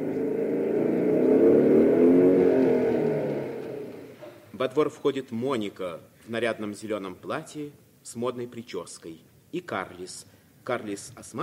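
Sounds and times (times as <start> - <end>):
motorcycle engine droning as it drives up: 0.0 - 4.5
speech: 4.6 - 11.4.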